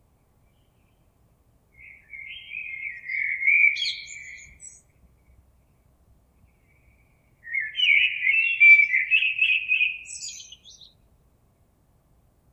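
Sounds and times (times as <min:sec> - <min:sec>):
Common blackbird song: 0:01.8 - 0:05.4, 0:06.4 - 0:11.0.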